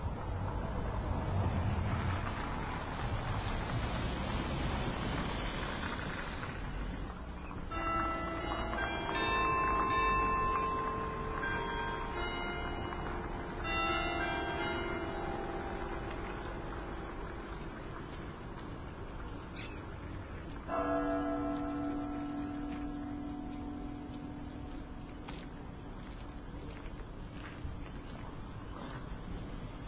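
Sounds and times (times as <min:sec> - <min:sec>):
street traffic with cars passing: 0:00.0 - 0:29.8
church bell striking the hour: 0:07.7 - 0:18.8, 0:20.5 - 0:26.8.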